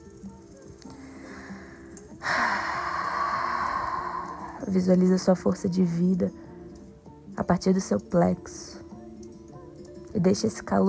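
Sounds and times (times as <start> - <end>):
person inhaling during a standing breathing exercise: 1.0 - 4.6
speech: 4.6 - 6.4, 7.5 - 8.8, 10.2 - 10.8.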